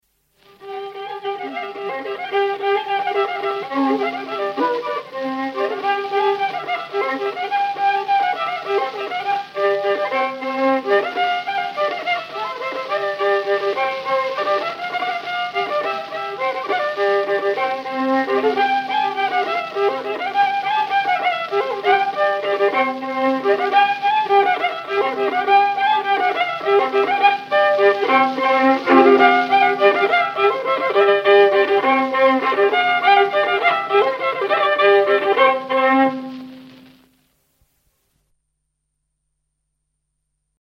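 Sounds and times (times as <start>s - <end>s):
violin playing a folk waltz: 0.4s - 37.2s.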